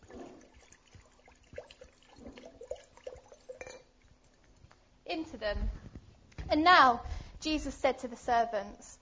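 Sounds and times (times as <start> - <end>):
water being poured into big water jugs: 0.0 - 4.7
speech: 5.1 - 5.8, 6.5 - 9.0.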